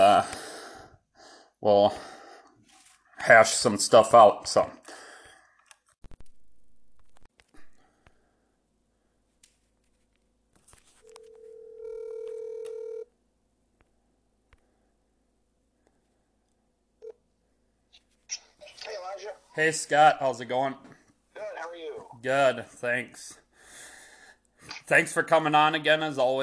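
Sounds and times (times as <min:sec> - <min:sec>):
speech: 0:01.6 - 0:02.2, 0:03.2 - 0:05.0, 0:19.6 - 0:21.0, 0:22.2 - 0:23.4, 0:24.9 - 0:26.4
clicks and taps of a phone being dialed: 0:11.0 - 0:13.0
steady electronic telephone ringing tone: 0:11.0 - 0:13.1.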